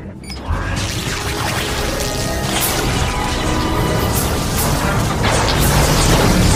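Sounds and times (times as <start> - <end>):
science-fiction shield generator fitted with special fuses powering up: 0.3 - 6.5.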